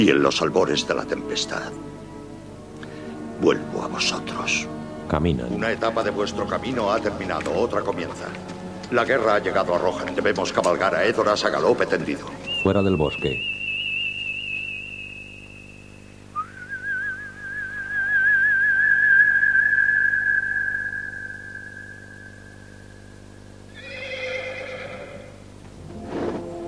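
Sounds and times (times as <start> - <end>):
speech: 0.0 - 1.9, 3.4 - 13.6
long loud whistle calling a horse: 12.5 - 23.4
horse whinnying: 23.7 - 25.5.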